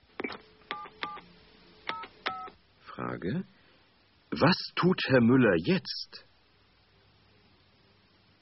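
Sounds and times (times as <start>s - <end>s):
telephone keypad tones as buttons are pressed: 0.2s - 1.2s, 1.9s - 2.5s
speech: 3.0s - 3.6s, 4.4s - 6.3s.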